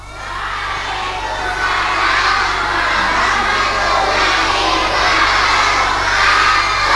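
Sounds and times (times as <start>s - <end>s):
large group of kindergarten children shouting a greeting in unison: 0.0s - 6.9s
laughter: 0.0s - 6.9s.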